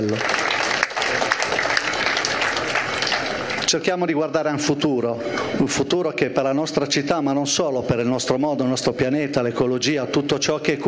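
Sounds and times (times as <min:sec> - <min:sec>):
speech: 0:00.0 - 0:00.4, 0:03.7 - 0:10.8
audience applause at a sailing event: 0:00.0 - 0:03.8.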